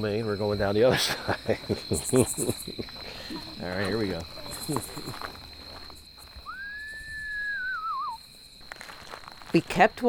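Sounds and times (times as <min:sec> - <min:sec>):
speech: 0:00.0 - 0:05.4, 0:09.5 - 0:10.0
crickets and katydids humming at night: 0:00.0 - 0:10.0
laughter: 0:00.8 - 0:05.5
man whistling screech owl imitation call at night: 0:06.4 - 0:08.2.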